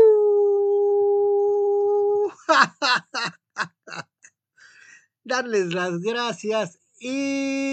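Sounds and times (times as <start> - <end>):
person imitating a howl: 0.0 - 2.4
speech: 5.4 - 7.7.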